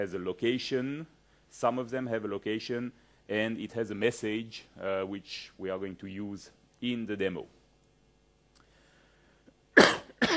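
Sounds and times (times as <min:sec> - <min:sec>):
speech: 0:00.0 - 0:07.6
sick person coughing harshly: 0:09.8 - 0:10.3.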